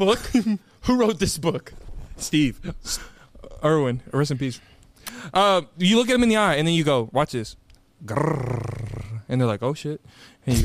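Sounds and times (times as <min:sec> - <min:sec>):
speech: 0:00.0 - 0:10.6
person imitating a big cat with a low rumbling growl: 0:08.0 - 0:09.3.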